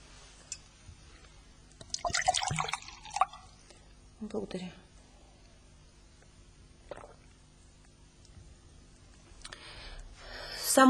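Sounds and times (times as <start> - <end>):
water poured into a glass: 1.8 - 3.6
speech: 4.2 - 4.8.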